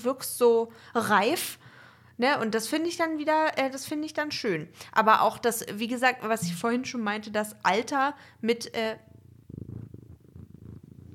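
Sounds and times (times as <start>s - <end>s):
speech: 0.0s - 9.1s
cat purring: 9.4s - 11.1s.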